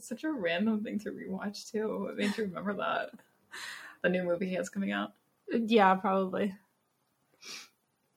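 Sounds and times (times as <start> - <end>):
speech: 0.0 - 6.6, 7.4 - 7.7
quick hissing nose sniffle caused by cats: 7.4 - 7.8.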